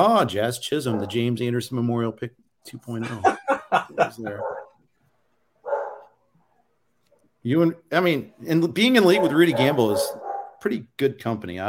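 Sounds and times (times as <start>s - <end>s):
speech: 0.0s - 4.6s, 7.4s - 11.6s
single dog bark: 0.8s - 1.3s, 4.3s - 4.8s, 5.6s - 6.2s, 9.0s - 10.6s
laughter: 2.9s - 4.6s.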